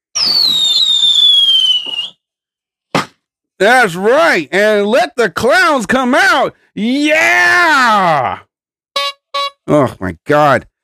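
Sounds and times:
firework sharp burst: 0:00.1 - 0:02.0
firework whistle gliding downward: 0:00.1 - 0:02.3
speech: 0:00.2 - 0:01.0, 0:03.6 - 0:08.5, 0:09.7 - 0:10.7.

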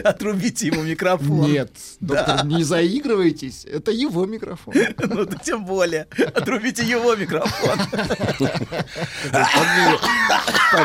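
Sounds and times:
man coughing: 0:00.0 - 0:01.2, 0:09.0 - 0:10.8
speech: 0:00.0 - 0:10.8
laughter: 0:02.1 - 0:02.8, 0:04.6 - 0:10.8.

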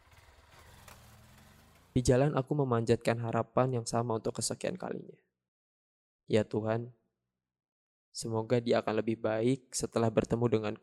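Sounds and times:
motorcycle engine starting and idling: 0:00.0 - 0:02.0
speech: 0:02.0 - 0:05.3, 0:06.3 - 0:07.0, 0:08.1 - 0:10.8.

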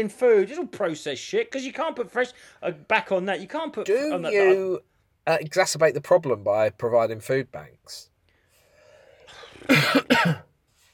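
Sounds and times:
speech: 0:00.0 - 0:08.1, 0:09.3 - 0:10.5
faint raspy breath: 0:08.3 - 0:09.6
person coughing harshly: 0:09.6 - 0:10.5.

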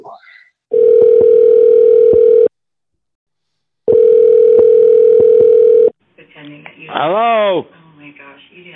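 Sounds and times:
electronic ringback tones through a phone line: 0:00.7 - 0:02.5, 0:03.9 - 0:05.9.

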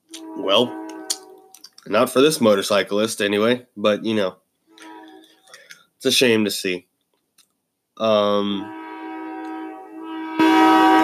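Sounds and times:
train horn blaring: 0:00.1 - 0:01.6, 0:04.7 - 0:05.4, 0:08.4 - 0:11.0
speech: 0:00.4 - 0:00.8, 0:01.8 - 0:04.4, 0:06.0 - 0:06.9, 0:08.0 - 0:08.8.

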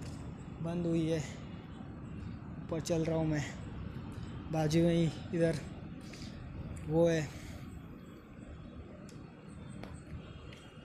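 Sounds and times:
low rumble of traffic on a raised road: 0:00.0 - 0:10.8
speech: 0:00.6 - 0:01.4, 0:02.7 - 0:03.6, 0:04.5 - 0:05.7, 0:06.9 - 0:07.4.

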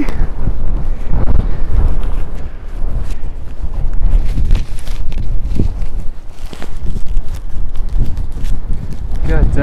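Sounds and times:
strong wind gusts buffeting the microphone on a ridge: 0:00.0 - 0:09.6
irregular thumps and crunches: 0:03.0 - 0:09.2.

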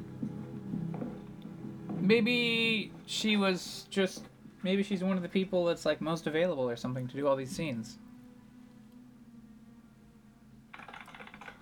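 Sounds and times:
low steady hum: 0:00.0 - 0:10.8
speech: 0:02.1 - 0:08.1
typing on clicky mechanical IBM keyboard: 0:10.7 - 0:11.6.

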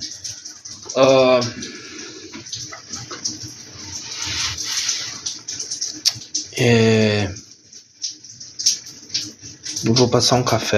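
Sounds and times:
running water from a shower: 0:00.0 - 0:10.7
speech: 0:01.0 - 0:01.8, 0:06.6 - 0:07.3, 0:09.9 - 0:10.7.

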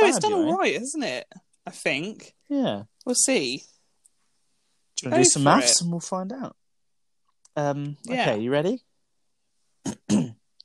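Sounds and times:
speech: 0:00.1 - 0:03.7, 0:05.0 - 0:06.6, 0:07.6 - 0:08.9, 0:09.8 - 0:10.4
throat clearing: 0:09.8 - 0:10.4.

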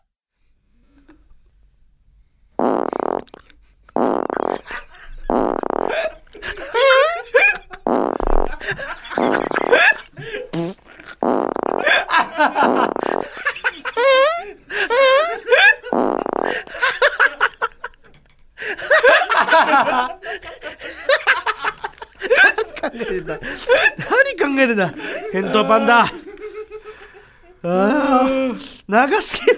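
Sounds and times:
long sputtering fart: 0:02.6 - 0:06.1, 0:07.8 - 0:13.5, 0:15.9 - 0:16.8
laughter: 0:04.5 - 0:05.3, 0:05.9 - 0:10.5, 0:11.8 - 0:24.1, 0:24.8 - 0:27.6
speech: 0:24.7 - 0:26.2, 0:29.0 - 0:29.5.

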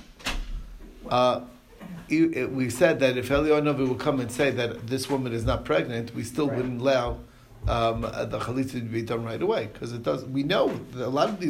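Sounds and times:
door slamming shut: 0:00.0 - 0:00.8
speech: 0:01.1 - 0:11.4.

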